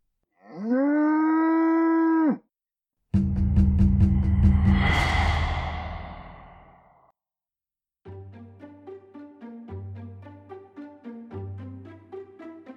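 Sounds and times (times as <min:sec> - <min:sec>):
cow mooing: 0:00.4 - 0:02.4
noisy rumbling crash with a rising whoosh: 0:03.2 - 0:07.0.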